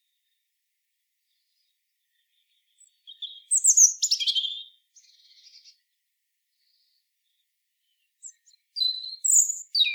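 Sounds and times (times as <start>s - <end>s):
European robin singing, Erithacus rubecula: 2.1s - 5.7s, 7.9s - 9.9s.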